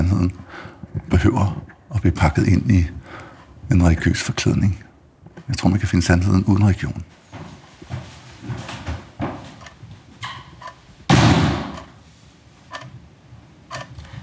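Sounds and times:
speech: 1.2 - 3.0, 3.7 - 4.9, 5.5 - 7.2
door slamming shut by itself: 11.1 - 12.0
clock ticking steadily: 12.7 - 13.0.

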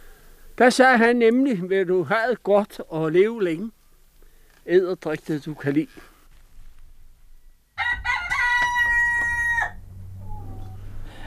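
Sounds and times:
speech: 0.6 - 3.8, 4.7 - 6.1
low rumble: 6.8 - 11.2
rooster crowing: 7.8 - 11.2.

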